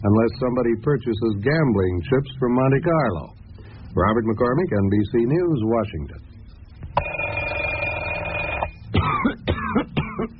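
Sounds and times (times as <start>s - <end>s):
speech: 0.0s - 6.3s
steady ringing tone: 7.0s - 8.8s
person coughing harshly: 8.9s - 10.3s.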